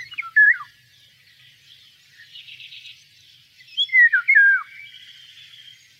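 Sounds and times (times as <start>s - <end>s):
Eurasian golden oriole song: 0.0s - 0.7s, 3.7s - 5.0s
other birds twittering: 0.0s - 5.9s.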